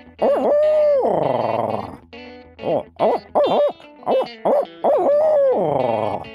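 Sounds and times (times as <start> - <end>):
person imitating barred owl hoots and caterwauling calls: 0.2 - 2.0, 2.6 - 4.2, 4.8 - 6.3.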